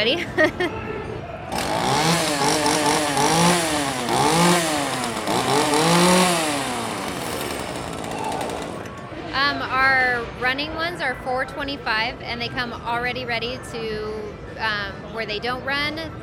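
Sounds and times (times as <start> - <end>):
speech: 0.0 - 0.9, 10.2 - 16.2
small two-stroke prop chainsaw engine revving: 1.5 - 9.0.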